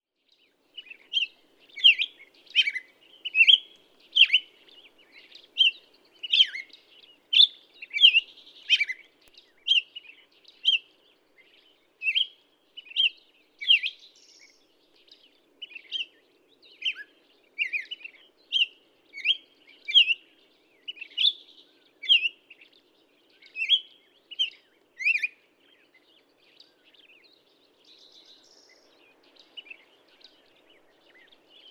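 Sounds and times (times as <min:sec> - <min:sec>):
Black-headed Grosbeak: 0:00.3 - 0:31.6.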